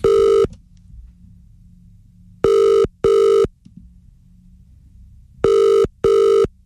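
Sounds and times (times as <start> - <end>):
telephone ringback tone while calling a fish and chip shop: 0.0 - 0.5, 2.4 - 3.5, 5.4 - 6.5
faint low hum: 0.0 - 6.6.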